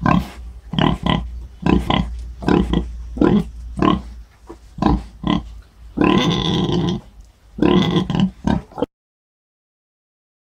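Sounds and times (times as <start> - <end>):
wild boar or domestic pig squealing: 0.0 - 4.1, 4.8 - 8.9.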